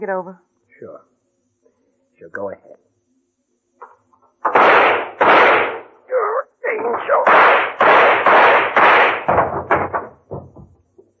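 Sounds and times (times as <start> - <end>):
speech: 0.0 - 1.1, 2.2 - 2.8
gunshots fired from a gun until empty: 4.4 - 6.0, 6.7 - 10.1.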